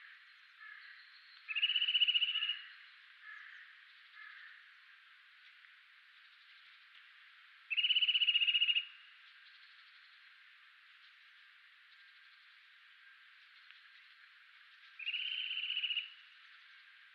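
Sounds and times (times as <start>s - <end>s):
faint steady hiss: 0.0s - 17.1s
Eurasian nuthatch Sitta europaea piping trill: 7.7s - 9.6s, 15.0s - 16.2s.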